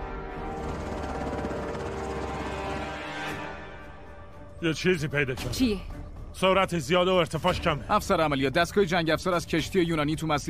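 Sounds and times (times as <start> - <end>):
helicopter rotor drone near a church tower: 0.3 - 4.6
speech: 4.6 - 10.4.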